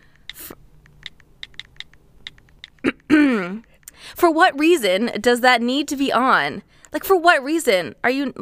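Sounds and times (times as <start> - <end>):
phone keyboard taps from texting with keyboard sound effects on: 0.2 - 2.9
speech: 4.2 - 8.3.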